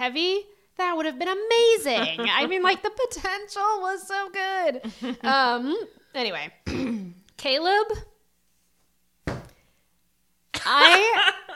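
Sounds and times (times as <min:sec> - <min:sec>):
speech: 0:00.0 - 0:08.1, 0:10.6 - 0:11.5
book slammed down onto a surface: 0:09.2 - 0:09.6.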